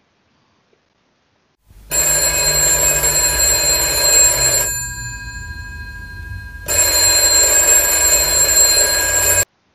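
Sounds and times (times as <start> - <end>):
faint hum: 1.7 - 9.4
old-fashioned telephone bell ringing: 1.7 - 9.5.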